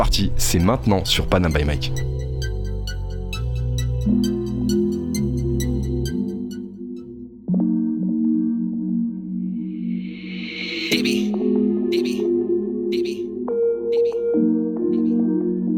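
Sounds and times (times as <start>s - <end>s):
speech: 0.2s - 2.1s, 4.1s - 4.8s
instrumental song intro: 2.0s - 15.7s
rising noise sweep: 9.7s - 11.2s.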